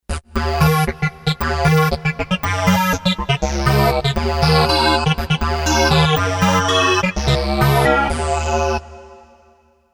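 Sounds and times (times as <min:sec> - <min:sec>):
Kawai K5000S synthesizer: 0:00.4 - 0:09.4.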